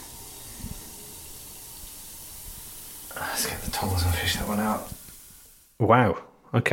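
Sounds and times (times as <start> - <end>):
object fizzing in water: 0.0 - 5.8
speech: 3.4 - 5.0, 5.8 - 6.7.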